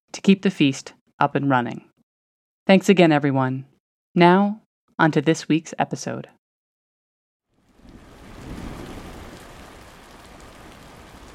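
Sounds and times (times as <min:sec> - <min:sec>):
speech: 0:00.2 - 0:01.9, 0:02.7 - 0:06.4
heavy rain pouring on the south coast of England: 0:07.6 - 0:11.3
low rumble of distant thunder: 0:07.7 - 0:11.3.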